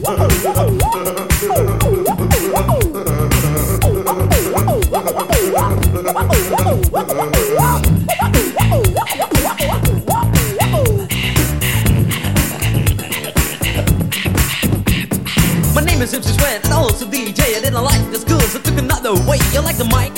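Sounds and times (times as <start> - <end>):
laughter: 0.0 - 14.4
swooping vocal whoops: 0.0 - 14.4
human beatbox vocal percussion with kicks, snare clicks and hi-hats: 0.0 - 20.1.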